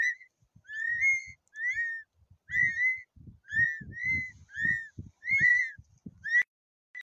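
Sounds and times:
houbara bustard calling: 0.0s - 6.5s.

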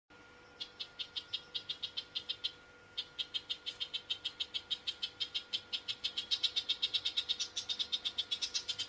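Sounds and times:
woodchat shrike: 0.3s - 8.8s.

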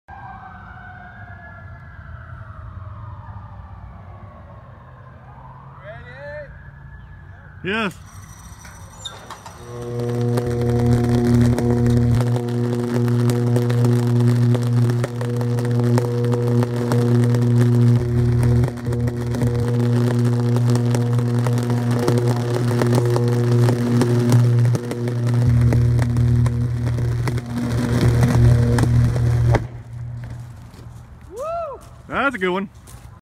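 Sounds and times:
high voltage power: 7.7s - 31.2s.

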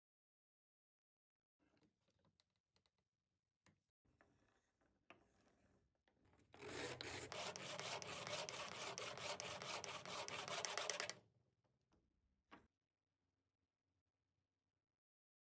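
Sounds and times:
pencil sharpener: 6.6s - 11.2s.

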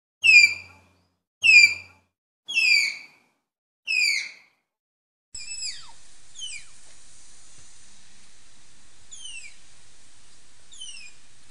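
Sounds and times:
Malayan tapir giving shrill whistled squeals: 0.2s - 0.7s, 1.4s - 1.8s, 2.5s - 3.1s, 3.9s - 4.4s, 5.4s - 6.8s, 9.1s - 9.6s, 10.7s - 11.2s.

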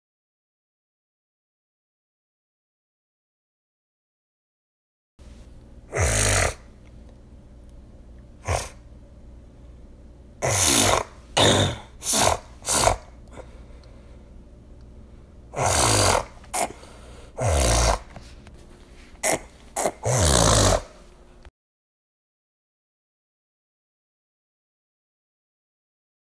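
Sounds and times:
nose sniff: 5.9s - 6.6s, 8.4s - 8.8s, 10.4s - 13.5s, 15.6s - 21.0s.

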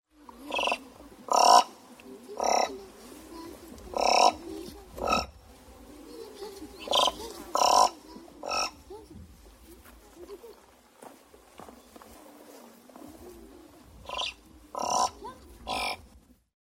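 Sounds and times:
thick-billed raven calling: 0.3s - 3.1s, 3.8s - 5.5s, 6.6s - 8.9s, 13.9s - 16.1s.

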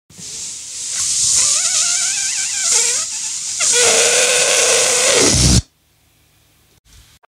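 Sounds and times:
deflating: 0.9s - 5.7s.

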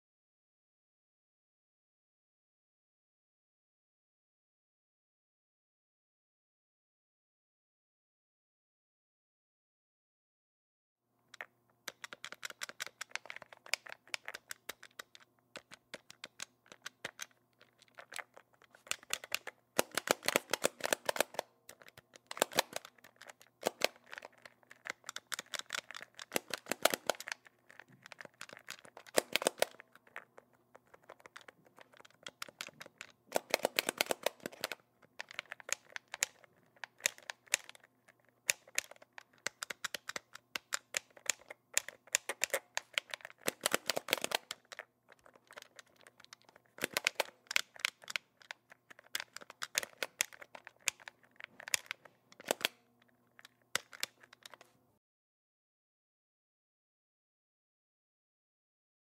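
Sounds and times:
game controller: 11.4s - 54.8s.

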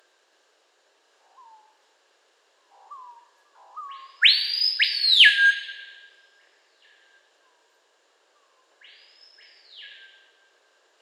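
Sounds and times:
Screaming piha whistling ringing upsweep: 3.8s - 5.8s.

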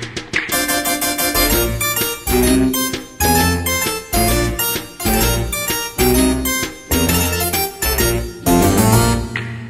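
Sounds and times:
childish ringtone: 0.5s - 9.3s.

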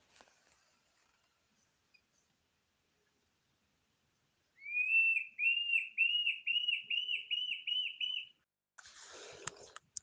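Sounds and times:
Mackenziaena bird calling: 4.6s - 8.4s.

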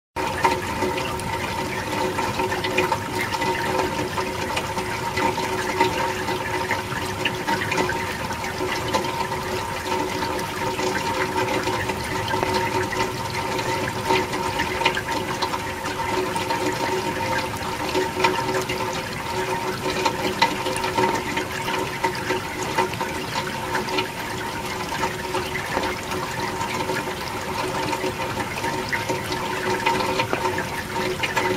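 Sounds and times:
rain on gutter: 0.2s - 31.5s.

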